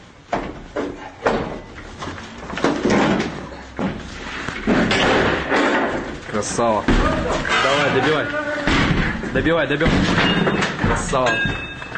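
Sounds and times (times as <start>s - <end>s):
apartment door being forced open with heavy thuds in Selydove: 2.5s - 4.0s, 4.6s - 6.2s, 6.9s - 11.2s
speech: 6.4s - 8.5s, 9.3s - 11.7s.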